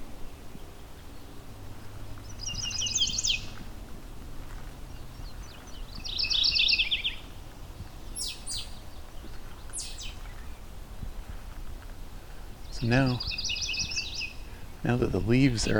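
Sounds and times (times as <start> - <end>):
mourning warbler singing rolling phrases: 0.0 - 3.7, 4.5 - 11.4, 12.4 - 15.7
mourning warbler sharp high call notes: 2.2 - 3.6, 5.3 - 7.3, 8.1 - 10.6, 12.7 - 14.7
speech: 12.8 - 13.4, 14.8 - 15.7.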